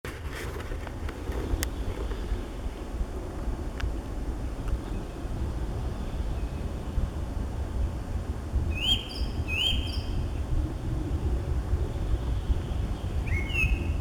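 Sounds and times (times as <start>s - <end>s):
low rumbling noise: 0.1s - 13.9s
song thrush whistled phrases: 8.8s - 10.1s, 13.3s - 13.9s.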